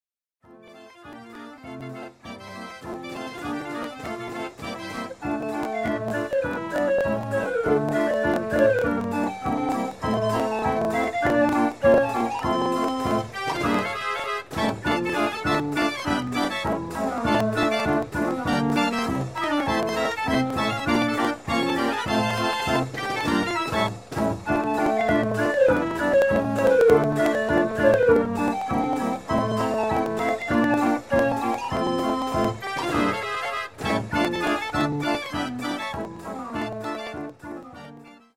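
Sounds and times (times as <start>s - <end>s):
barrel organ playing: 0.7s - 38.3s.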